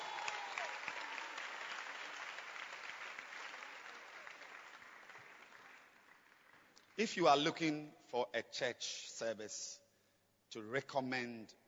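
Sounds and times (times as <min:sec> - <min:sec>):
church congregation clapping hands: 0:00.0 - 0:07.6
speech: 0:07.0 - 0:09.8, 0:10.5 - 0:11.6.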